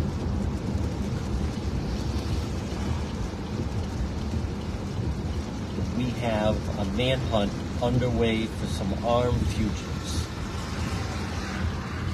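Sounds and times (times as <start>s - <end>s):
steady rain falling at night: 0.0s - 12.1s
speech: 6.2s - 10.3s.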